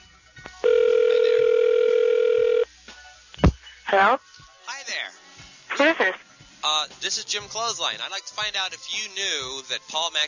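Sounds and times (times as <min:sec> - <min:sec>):
telephone dial tone: 0:00.6 - 0:02.6
speech: 0:04.0 - 0:04.3, 0:07.0 - 0:10.2.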